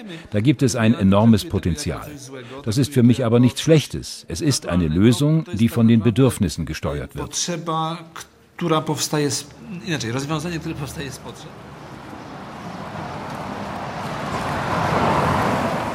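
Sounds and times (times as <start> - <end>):
speech: 0.0 - 11.7
street traffic at a zebra crossing outside a hospital: 8.3 - 15.9
vehicle passing by: 9.8 - 15.9.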